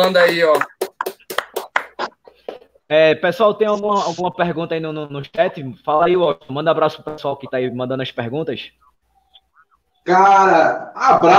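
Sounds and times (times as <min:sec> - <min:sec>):
speech: 0:00.0 - 0:00.8, 0:02.9 - 0:08.9, 0:10.0 - 0:11.3
hand clapping applause: 0:00.0 - 0:02.1.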